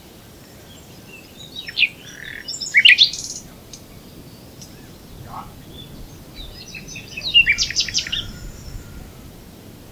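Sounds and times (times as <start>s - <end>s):
common nightingale Luscinia megarhynchos song: 0.0s - 9.8s.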